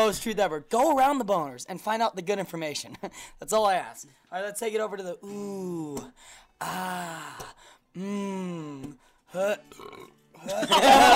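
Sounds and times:
speech: 0.0s - 11.1s
drawn-out low-pitched voiced burps: 9.4s - 10.4s
laughter: 10.4s - 11.1s.

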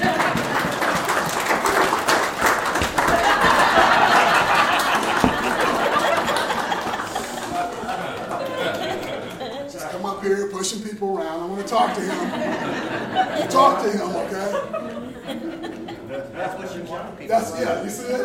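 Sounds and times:
crowd clapping and cheering for a football team: 0.0s - 9.5s
laughter: 0.0s - 10.4s, 11.0s - 18.2s
murmuring voices: 2.8s - 18.2s
speech: 11.8s - 15.7s, 16.3s - 18.2s.

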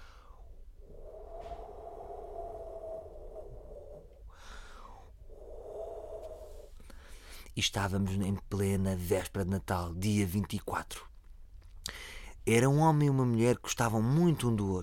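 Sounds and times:
voice imitating howling wind with moaning ooo tones: 0.7s - 6.8s
speech: 7.6s - 11.1s, 12.5s - 14.8s.

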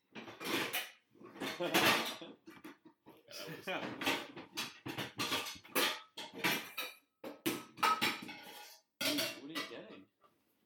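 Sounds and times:
pots and pans clattering in a kitchen: 0.1s - 10.1s
speech: 1.6s - 2.5s, 3.3s - 4.4s.

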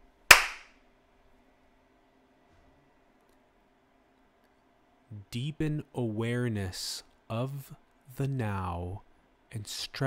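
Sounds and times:
single sharp loud hand clap: 0.3s - 0.7s
speech: 5.2s - 10.0s.

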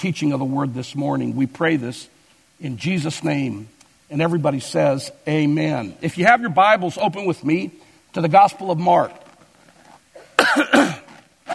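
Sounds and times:
speech: 0.0s - 9.2s, 10.6s - 11.0s
harsh coughs: 10.1s - 11.5s.

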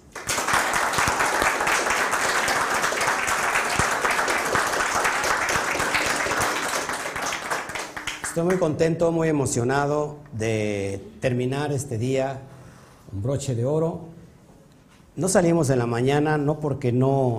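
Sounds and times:
large crowd applauding: 0.0s - 8.7s
speech: 8.4s - 12.5s, 13.1s - 14.1s, 15.2s - 17.3s.

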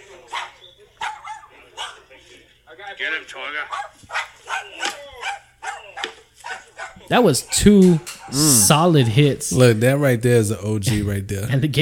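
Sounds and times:
dog barking: 0.3s - 2.1s, 3.6s - 9.4s
speech: 2.8s - 4.2s, 7.1s - 11.7s.

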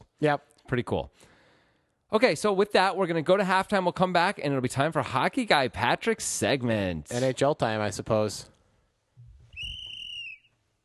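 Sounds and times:
speech: 0.2s - 1.3s, 2.1s - 8.5s
referee's whistle blast marking the end of halftime: 9.6s - 10.5s.

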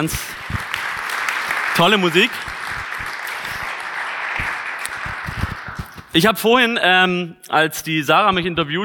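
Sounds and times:
speech: 0.0s - 0.6s, 1.8s - 2.6s, 6.1s - 8.8s
audience applause for a band: 0.0s - 6.1s.

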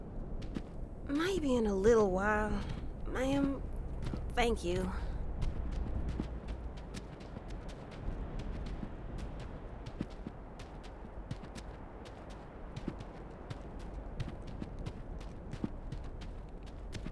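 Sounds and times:
low rumbling background: 0.0s - 7.4s
horse hooves clip-clopping at a walking pace: 0.0s - 17.1s
speech: 1.1s - 3.7s, 4.4s - 5.1s.

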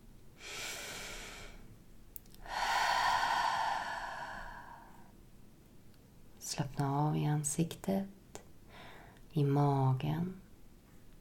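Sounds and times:
deep breath during a guided relaxation exercise: 0.4s - 1.7s, 2.4s - 5.1s
speech: 6.6s - 8.2s, 9.3s - 10.4s.

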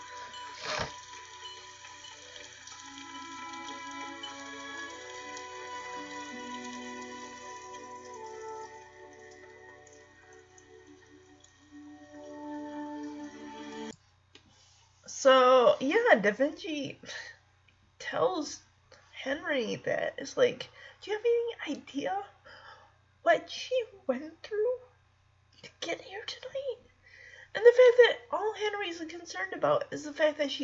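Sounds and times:
light rain beginning to fall: 0.0s - 13.9s
speech: 15.2s - 17.3s, 18.1s - 22.3s, 23.3s - 24.8s, 25.8s - 26.8s, 27.6s - 30.6s.

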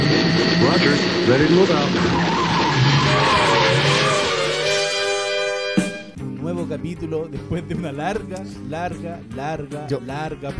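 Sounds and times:
roaring car engine: 0.0s - 5.4s
car tire squeal: 0.0s - 5.8s
speech: 0.6s - 2.3s, 6.8s - 10.5s.

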